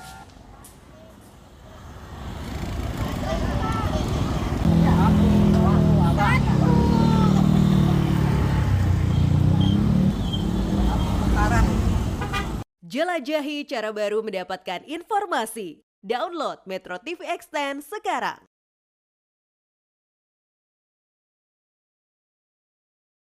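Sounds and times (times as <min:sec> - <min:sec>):
car and motorcycle horn toots: 0:00.0 - 0:00.3, 0:04.6 - 0:12.6
busy street traffic of cars and motorcycles in North Jakarta: 0:00.0 - 0:12.6
speech: 0:13.0 - 0:18.5.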